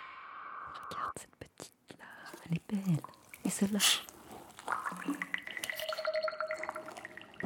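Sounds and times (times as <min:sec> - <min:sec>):
speech: 0:00.7 - 0:04.1
water bubbling and gurgling: 0:03.0 - 0:07.4.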